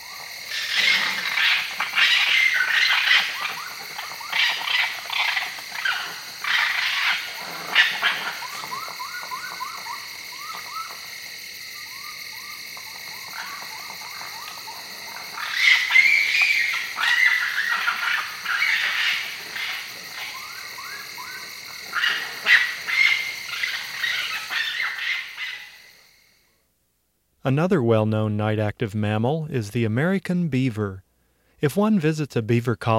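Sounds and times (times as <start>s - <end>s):
raccoons quarreling with shrill squeals and whines: 0.0s - 11.1s, 11.8s - 25.8s
speech: 27.5s - 31.0s, 31.6s - 32.9s.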